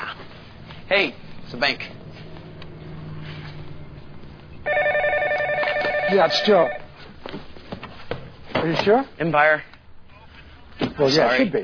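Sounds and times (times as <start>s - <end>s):
speech: 0.9s - 2.0s, 6.1s - 7.5s, 8.6s - 9.7s, 11.0s - 11.6s
telephone ringing: 4.7s - 7.0s.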